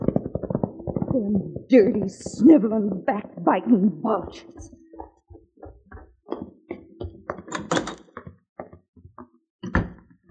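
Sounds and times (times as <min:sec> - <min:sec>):
speech: 0:01.2 - 0:04.8
back door opening and shutting: 0:06.3 - 0:08.2
knocks rattles and thumps from the door latch and frame: 0:07.4 - 0:08.2.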